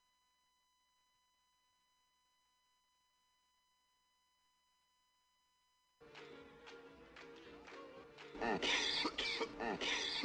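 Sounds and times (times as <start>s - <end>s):
person coughing harshly: 8.4s - 10.2s.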